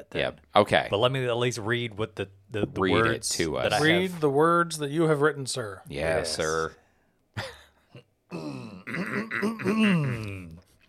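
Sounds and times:
speech: 0.0 - 6.8, 7.4 - 7.6, 9.2 - 10.5
person clearing throat: 8.3 - 10.6.

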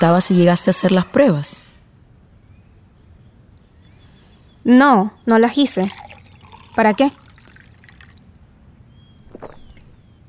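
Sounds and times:
speech: 0.0 - 1.7, 4.7 - 6.2, 6.8 - 7.2
water trickling and splashing into a glass: 5.6 - 8.3.

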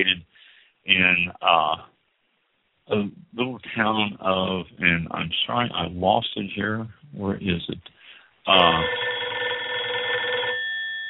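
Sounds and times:
speech: 0.0 - 0.2, 0.9 - 1.9, 2.9 - 9.1
telephone ringing with a bell-like trill: 8.5 - 11.0.

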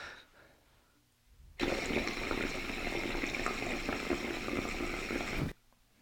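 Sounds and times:
older water pipe percolator bubbling: 1.6 - 5.6.

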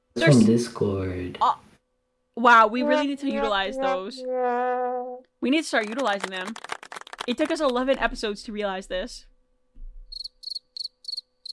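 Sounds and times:
speech: 0.2 - 1.7, 2.4 - 9.3
cricket chirping sound effect: 10.1 - 11.5.

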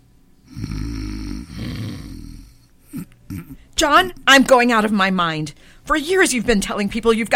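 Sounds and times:
man snoring loudly in bed: 0.4 - 3.6
speech: 3.4 - 7.3.

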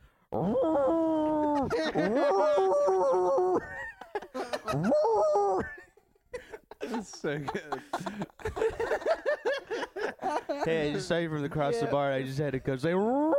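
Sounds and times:
person imitating a basset hound howl: 0.3 - 3.6, 4.7 - 5.7, 13.0 - 13.3
laughter: 1.2 - 11.6
speech: 1.9 - 3.0, 7.0 - 13.3.

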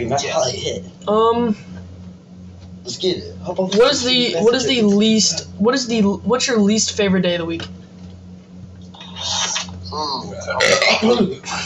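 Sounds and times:
speech: 0.0 - 1.7, 2.8 - 7.8, 10.0 - 11.6
steady low hum: 0.0 - 11.6
person burping: 10.0 - 11.4.

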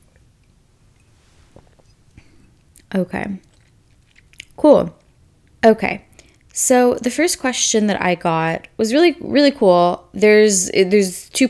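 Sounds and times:
person sipping coffee: 0.1 - 5.2
small swallowing noises: 0.1 - 6.6
soft wet mouth clicks: 1.0 - 5.1
speech: 2.9 - 3.5, 4.6 - 5.0, 5.6 - 11.4.

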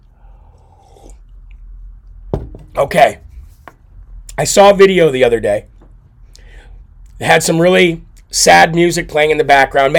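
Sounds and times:
steady low hum: 0.0 - 9.9
person slurping a drink: 0.4 - 1.3
speech: 2.8 - 3.2, 4.4 - 5.7, 7.2 - 9.9.

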